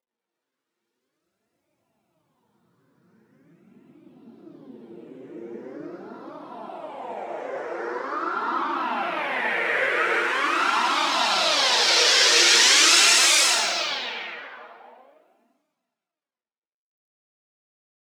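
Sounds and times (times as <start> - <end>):
noise effect: 5.4 - 15.0.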